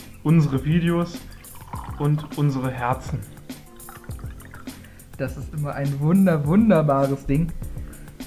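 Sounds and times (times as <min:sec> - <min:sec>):
speech: 0:00.2 - 0:01.4, 0:02.0 - 0:03.4, 0:05.2 - 0:07.7
agave syrup poured into a glass: 0:01.2 - 0:05.0.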